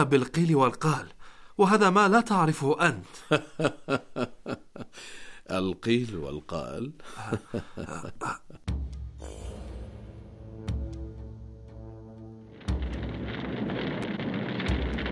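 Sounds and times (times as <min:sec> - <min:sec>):
speech: 0:00.0 - 0:09.4
laughter: 0:03.2 - 0:04.9, 0:07.1 - 0:08.6
fire whooshing up into a steady roar: 0:12.5 - 0:15.1.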